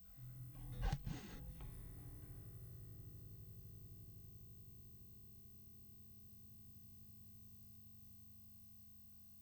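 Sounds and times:
electric bass direct input: 0.0 - 5.2.

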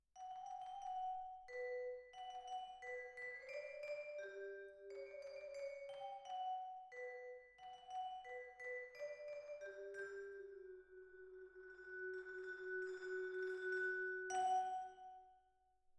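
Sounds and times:
vibraphone: 0.2 - 15.3.

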